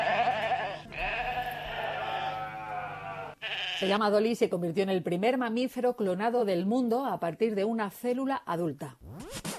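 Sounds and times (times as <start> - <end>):
sheep bleating: 0.0 - 4.0
speech: 3.8 - 9.1.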